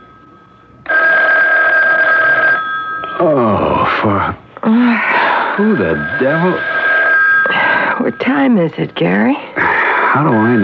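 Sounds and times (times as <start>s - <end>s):
telephone ringing early in the morning in a Park Avenue apartment in New York: 0.0s - 3.8s, 5.2s - 10.6s
speech: 3.2s - 4.4s, 5.6s - 6.8s, 7.5s - 10.6s
drowsy person groaning and moaning: 3.2s - 5.6s.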